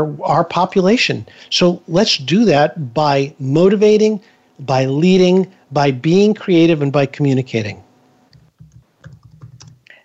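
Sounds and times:
speech: 0.0s - 7.8s
typing on a computer keyboard: 8.3s - 9.9s.

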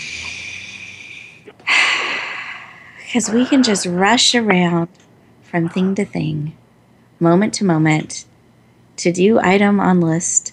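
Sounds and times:
deep breath drawn slowly: 0.0s - 3.9s
speech: 3.1s - 6.6s, 7.2s - 8.3s, 9.0s - 10.5s.

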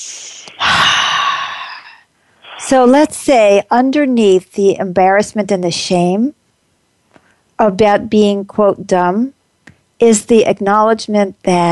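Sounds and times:
deep breath: 0.0s - 2.6s
speech: 2.7s - 6.4s, 7.6s - 9.4s, 10.0s - 11.6s.

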